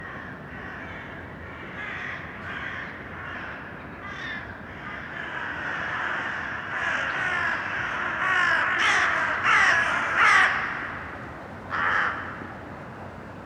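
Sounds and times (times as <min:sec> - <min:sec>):
steady urban background noise: 0:00.0 - 0:13.4
crows cawing in an urban setting: 0:04.0 - 0:12.5.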